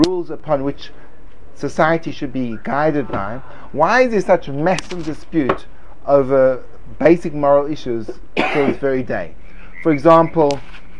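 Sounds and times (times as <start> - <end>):
speech: 0.0 - 10.8
nasal frog croaks: 9.6 - 10.4.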